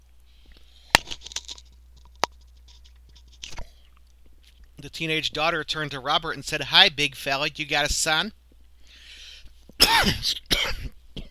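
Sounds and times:
speech: 0:04.8 - 0:08.4, 0:10.0 - 0:10.5
faint short breath: 0:08.8 - 0:09.6
harsh raspy coughs: 0:09.8 - 0:11.3.

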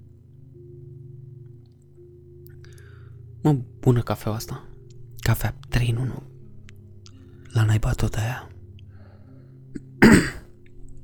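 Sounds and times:
faint low hum: 0:00.0 - 0:11.0
speech: 0:03.4 - 0:04.7, 0:05.3 - 0:06.3, 0:07.6 - 0:08.5
person clearing throat or coughing: 0:09.8 - 0:10.5.

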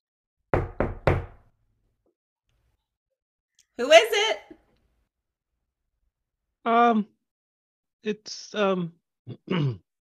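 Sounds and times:
firm knocks on a front door: 0:00.5 - 0:01.5
speech: 0:03.8 - 0:04.6, 0:06.6 - 0:07.2, 0:08.0 - 0:09.8.

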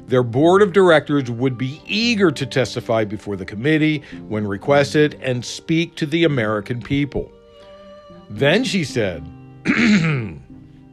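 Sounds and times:
speech: 0:00.1 - 0:07.4, 0:08.3 - 0:10.4
person clearing throat: 0:09.6 - 0:10.5.

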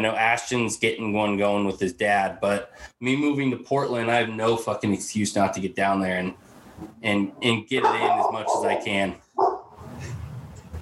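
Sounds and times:
speech: 0:00.0 - 0:09.5
dog barking: 0:07.8 - 0:09.8.

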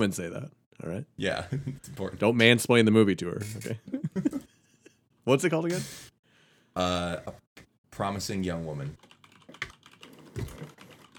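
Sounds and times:
speech: 0:00.0 - 0:04.3, 0:05.3 - 0:06.1, 0:06.8 - 0:07.4, 0:08.0 - 0:09.1
computer keyboard keys clicking while typing: 0:09.0 - 0:11.1.

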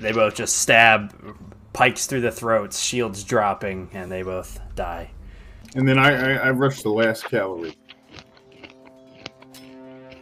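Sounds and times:
steady low electrical hum: 0:00.0 - 0:07.1
speech: 0:00.0 - 0:07.8
person chewing crunchy snacks: 0:07.6 - 0:10.2.

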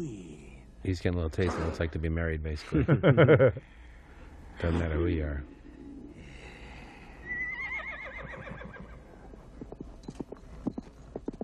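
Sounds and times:
speech: 0:00.0 - 0:00.2, 0:00.8 - 0:03.8, 0:04.6 - 0:05.6
laughter: 0:02.6 - 0:03.7
horse neighing: 0:07.3 - 0:09.0
horse hooves clip-clopping: 0:08.4 - 0:11.4.

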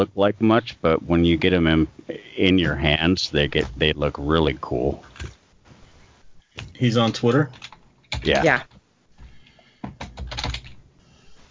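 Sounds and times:
speech: 0:00.0 - 0:05.1, 0:06.8 - 0:07.6, 0:08.2 - 0:08.7
typing on a wireless computer keyboard: 0:09.9 - 0:10.8.

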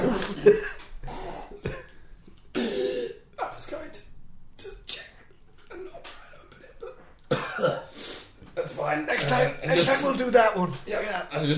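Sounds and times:
person coughing: 0:00.0 - 0:03.3, 0:05.7 - 0:08.0
speech: 0:00.1 - 0:00.8, 0:08.9 - 0:11.5.

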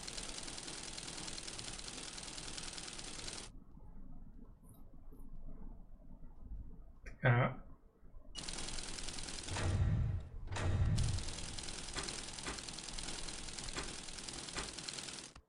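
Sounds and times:
video game machine-gun clatter: 0:00.0 - 0:03.5, 0:08.4 - 0:09.8, 0:10.6 - 0:15.4
speech: 0:07.2 - 0:07.6
heavier low thumps: 0:09.5 - 0:11.4.

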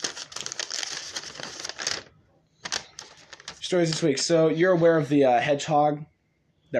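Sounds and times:
paper crumpling and crinkling: 0:00.0 - 0:04.2
speech: 0:03.7 - 0:06.1.

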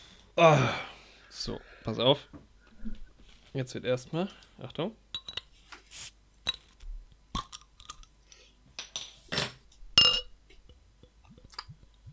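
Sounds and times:
speech: 0:00.4 - 0:03.0, 0:03.6 - 0:05.0
small beer bottle cap dropping onto a tabletop: 0:09.4 - 0:10.3.

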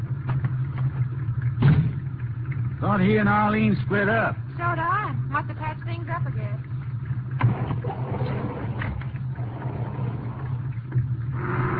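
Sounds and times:
car engine rumbling: 0:00.0 - 0:11.7
speech: 0:02.8 - 0:06.7.

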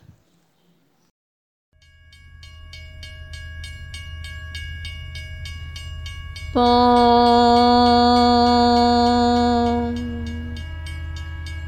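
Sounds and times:
sustained ringing tones of a train: 0:01.8 - 0:11.6
train arriving at station: 0:05.3 - 0:11.6
speech: 0:06.5 - 0:09.0.

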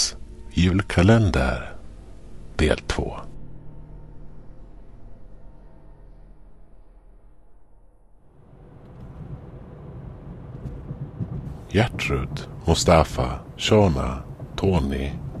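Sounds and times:
speech: 0:00.6 - 0:01.7, 0:02.6 - 0:03.3, 0:11.7 - 0:15.2
white limousine engine rumbling while driving: 0:08.2 - 0:15.3
road noise: 0:08.3 - 0:15.3.

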